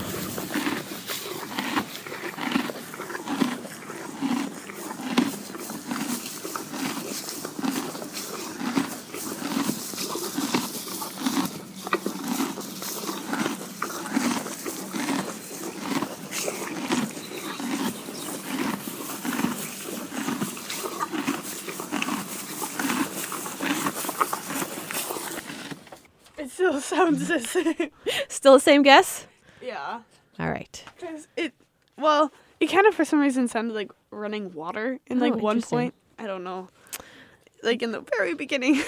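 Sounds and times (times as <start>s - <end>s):
horse eating hay: 0.0s - 26.1s
speech: 26.9s - 29.2s, 32.0s - 37.0s, 37.6s - 38.8s.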